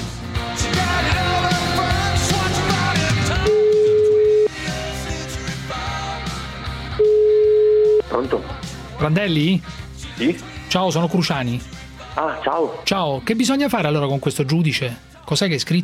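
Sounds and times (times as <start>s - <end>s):
busy music: 0.0s - 15.8s
outgoing phone call ringback tone: 3.5s - 4.6s, 7.0s - 8.0s
speech: 8.2s - 15.8s.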